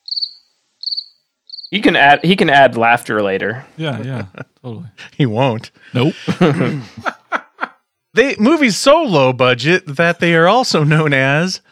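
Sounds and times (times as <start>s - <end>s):
cricket chirping: 0.0s - 1.8s
speech: 0.2s - 7.2s, 8.2s - 11.7s
laughter: 3.8s - 5.2s, 5.9s - 7.8s.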